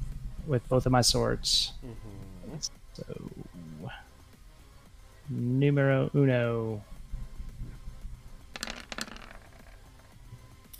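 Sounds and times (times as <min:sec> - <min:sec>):
speech: 0:00.5 - 0:03.3, 0:05.3 - 0:06.9
handful of dice rolled for a sword attack clattering onto a hard tabletop: 0:08.5 - 0:10.2.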